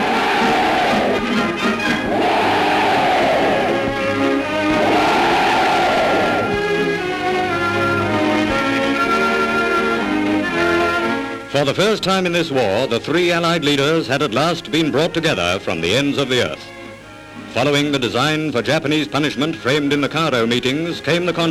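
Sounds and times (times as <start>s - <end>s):
large crowd of soldiers cheering: 0.0s - 10.4s
speech: 11.6s - 16.8s, 17.5s - 21.4s.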